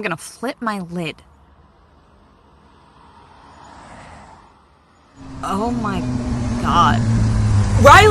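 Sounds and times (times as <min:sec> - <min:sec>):
speech: 0:00.0 - 0:01.3, 0:05.4 - 0:07.2, 0:07.8 - 0:08.0
motorcycle engine approaching: 0:05.2 - 0:08.0.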